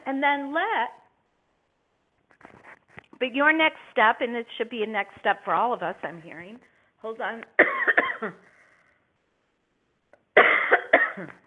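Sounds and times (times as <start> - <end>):
speech: 0.1 - 1.0, 3.2 - 8.5, 10.4 - 10.6, 11.2 - 11.4
coughing to clear a tickle in the throat: 7.6 - 8.4, 10.4 - 11.4.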